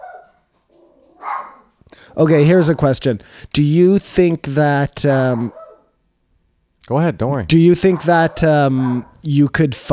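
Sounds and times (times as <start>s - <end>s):
dog barking: 0.0s - 1.8s, 5.2s - 6.0s, 7.6s - 9.3s
speech: 2.1s - 5.6s, 6.9s - 9.9s.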